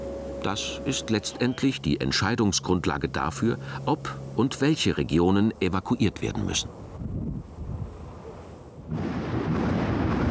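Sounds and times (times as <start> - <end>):
speech: 0.4 - 6.8
thunder rumbling: 8.8 - 10.2.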